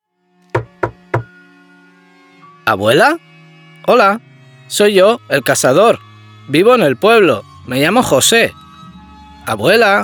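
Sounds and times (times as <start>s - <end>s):
firm knocking on a wooden door: 0.6s - 1.3s
speech: 2.7s - 3.3s, 3.9s - 8.6s, 9.5s - 10.0s.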